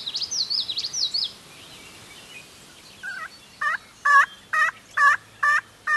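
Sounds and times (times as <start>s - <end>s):
songbird chatter: 0.0s - 5.9s
hunter's turkey call yelping to attract wild turkeys: 3.0s - 5.9s.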